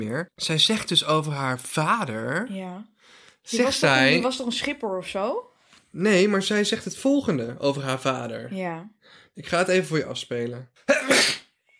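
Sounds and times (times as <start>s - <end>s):
speech: 0.0s - 11.4s
sneeze: 10.9s - 11.5s.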